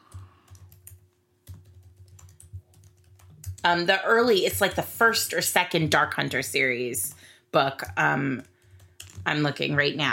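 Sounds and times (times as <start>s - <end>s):
typing on a computer keyboard: 0.0s - 4.9s, 7.8s - 9.6s
speech: 3.6s - 8.5s, 9.3s - 10.1s.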